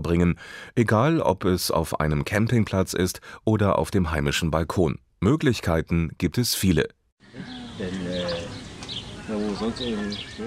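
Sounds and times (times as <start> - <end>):
speech: 0.0 - 8.1, 9.6 - 10.4
low murmuring voices: 7.2 - 10.4
outdoor birds chirping in quick light bursts: 7.2 - 10.4.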